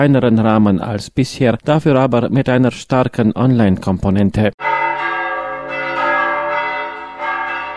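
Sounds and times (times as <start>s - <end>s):
speech: 0.0s - 4.8s
church bells ringing: 4.6s - 7.7s.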